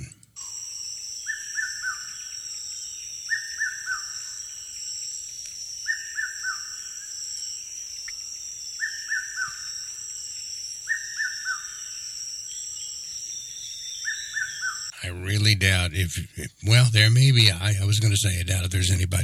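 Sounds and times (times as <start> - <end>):
constant high insect drone: 0.0 - 15.0
red-winged cuckoo calling: 0.0 - 15.0
speech: 15.1 - 19.2.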